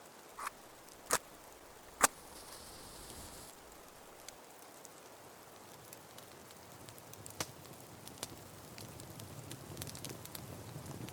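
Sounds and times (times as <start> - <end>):
campfire of twigs, branches and kindling crackling in a cold forest: 0.0 - 11.1
soft steady hiss of campfire: 0.0 - 11.1
sharp pops and snaps of burning twigs and branches: 0.4 - 4.4, 7.2 - 10.4.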